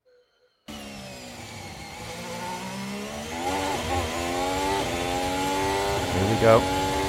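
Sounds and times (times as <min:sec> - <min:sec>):
Formula 1 car engine screaming onboard through gear changes out of turn three: 0:01.7 - 0:07.0
speech: 0:06.2 - 0:06.8.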